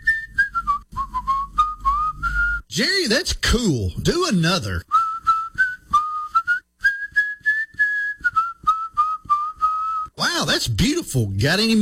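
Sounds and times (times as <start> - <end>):
person whistling a clear melodic tune: 0.0 - 2.7, 4.8 - 10.2
speech: 2.8 - 4.9, 10.7 - 11.8.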